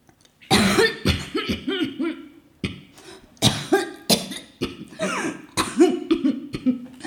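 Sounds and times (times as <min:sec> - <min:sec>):
woman coughing in harsh loud bursts: 0:00.5 - 0:02.3, 0:03.4 - 0:07.0.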